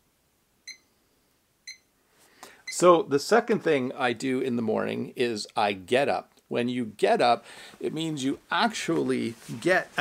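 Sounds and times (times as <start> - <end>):
alarm clock beeping with short electronic tones: 0.7 - 0.9, 1.7 - 1.9
speech: 2.8 - 10.0.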